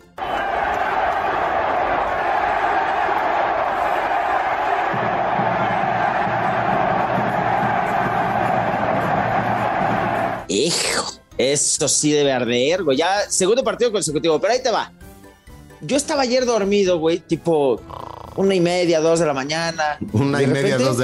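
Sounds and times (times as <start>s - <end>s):
stadium crowd roaring and chanting at a football clásico: 0.2s - 10.5s
speech: 10.5s - 15.0s, 15.8s - 21.0s.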